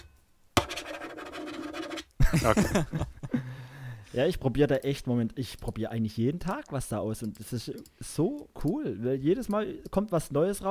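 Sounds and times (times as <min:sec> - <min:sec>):
pen scratching on paper while writing something down: 0:00.6 - 0:02.1
laughter: 0:02.2 - 0:03.6
speech: 0:02.3 - 0:03.2, 0:04.2 - 0:10.6.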